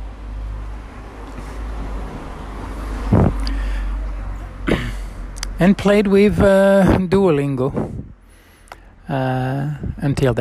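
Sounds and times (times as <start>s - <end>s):
car passing by: 0.0s - 5.4s
speech: 5.6s - 8.0s, 9.1s - 10.3s.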